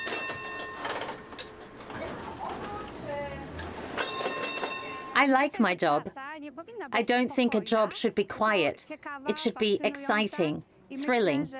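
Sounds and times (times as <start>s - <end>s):
metallic squeals and clanks: 0.0s - 4.7s
tram rumbling along city tram tracks: 0.0s - 5.2s
speech: 5.2s - 6.2s, 6.8s - 11.5s.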